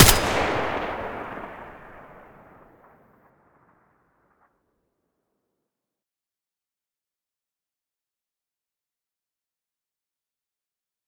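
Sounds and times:
M4A1 rifle muzzle gunshot: 0:00.0 - 0:02.6.

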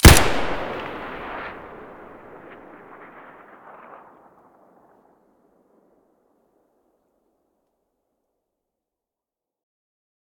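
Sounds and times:
SKS rifle gunshots at the muzzle: 0:00.0 - 0:04.0.

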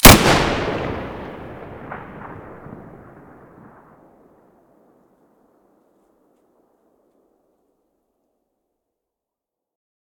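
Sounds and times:
SV98 rifle muzzle blast in stereo: 0:00.0 - 0:03.4.

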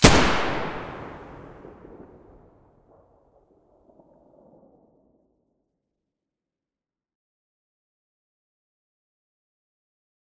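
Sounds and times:
assault rifle muzzle gunshot: 0:00.0 - 0:02.1.

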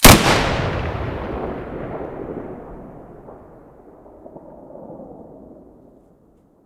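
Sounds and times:
SV98 rifle muzzle blast: 0:00.0 - 0:03.7.

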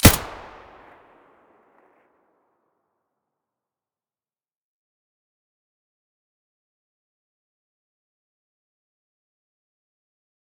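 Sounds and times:
gun muzzle blast in stereo: 0:00.0 - 0:01.0.

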